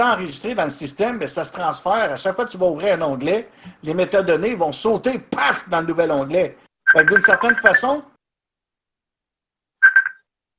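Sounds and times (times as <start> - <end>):
speech: 0.0 - 8.1
telephone ringing with an electronic warbling trill: 6.9 - 7.9, 9.8 - 10.2.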